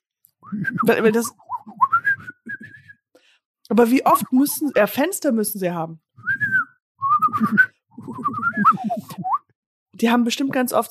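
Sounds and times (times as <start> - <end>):
speech: 0.4 - 1.8, 3.7 - 6.0, 7.4 - 7.7, 10.0 - 10.9
person whistling warbling notes imitating bird language: 0.4 - 3.0, 6.2 - 9.5
person laughing: 7.2 - 9.4.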